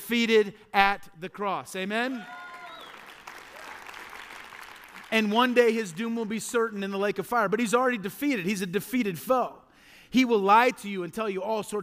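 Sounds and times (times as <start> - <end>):
speech: 0.1 - 2.5, 5.1 - 11.8
congregation cheering voices: 2.0 - 5.2
church congregation applauding during a sermon: 2.0 - 6.6.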